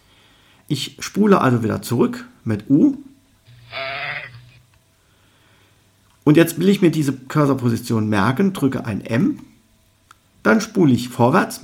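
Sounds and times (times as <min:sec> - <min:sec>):
speech: 0:00.7 - 0:03.1, 0:06.3 - 0:09.5, 0:10.4 - 0:11.6
single sheep bleating: 0:03.5 - 0:04.6.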